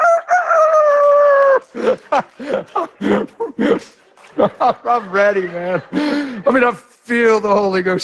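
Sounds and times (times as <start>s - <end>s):
bantam rooster crowing: 0.0s - 1.7s
laughter: 1.3s - 6.9s
speech: 1.8s - 8.0s.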